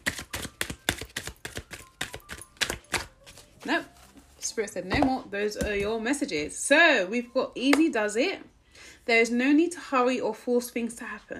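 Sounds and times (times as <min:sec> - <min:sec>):
deck of guidance cards being shuffled: 0:00.0 - 0:04.4
speech: 0:03.6 - 0:11.3.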